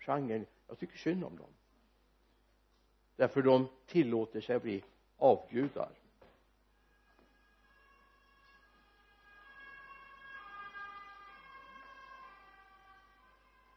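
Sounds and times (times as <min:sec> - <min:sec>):
speech: 0:00.0 - 0:01.6, 0:03.2 - 0:06.0
ambulance siren wailing outside: 0:06.9 - 0:13.7.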